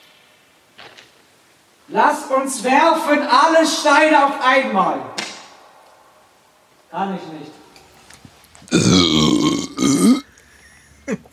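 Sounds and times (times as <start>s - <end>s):
speech: 1.9s - 5.2s, 7.0s - 7.6s
person burping: 8.7s - 10.3s.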